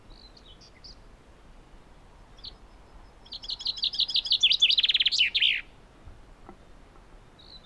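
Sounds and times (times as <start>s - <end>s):
Common chaffinch song, Fringilla coelebs: 0.0s - 1.1s, 2.4s - 5.8s, 7.3s - 7.6s.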